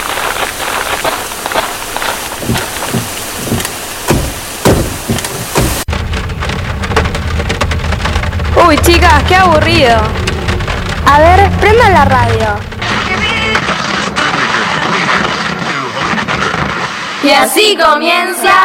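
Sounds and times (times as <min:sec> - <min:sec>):
heavy rain pouring in a forest: 0:00.0 - 0:17.2
low thunder rumbles: 0:00.1 - 0:14.0
speech: 0:08.7 - 0:10.2, 0:11.1 - 0:12.7, 0:17.2 - 0:18.6.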